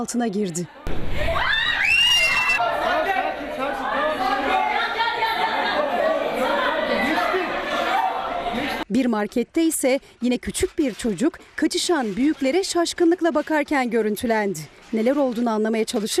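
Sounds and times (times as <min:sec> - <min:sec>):
speech: 0:00.0 - 0:01.6, 0:08.9 - 0:16.1
teacher screaming during earthquake: 0:01.2 - 0:02.7
roomful of agitated overlapping voices and shouts in classroom panic: 0:01.2 - 0:08.9.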